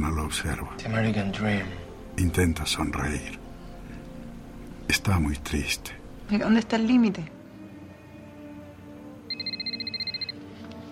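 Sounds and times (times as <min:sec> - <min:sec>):
speech: 0:00.3 - 0:03.4, 0:04.9 - 0:07.4
mobile phone ringing with warbling electronic trill: 0:09.3 - 0:10.5.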